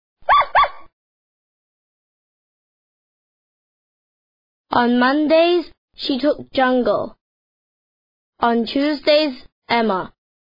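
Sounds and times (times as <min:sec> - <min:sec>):
dog barking: 0:00.2 - 0:00.9
speech: 0:04.7 - 0:07.2, 0:08.4 - 0:10.2.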